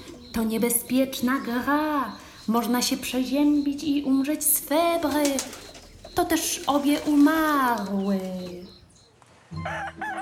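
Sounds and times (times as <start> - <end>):
faint noise: 0.0 - 10.2
speech: 0.4 - 8.8
rooster crowing: 9.6 - 10.2.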